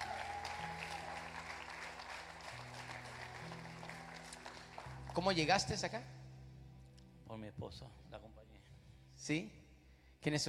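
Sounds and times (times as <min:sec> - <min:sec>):
crowd applauding: 0:00.0 - 0:05.9
speech: 0:05.2 - 0:06.2, 0:07.3 - 0:08.4, 0:09.2 - 0:09.6, 0:10.2 - 0:10.4.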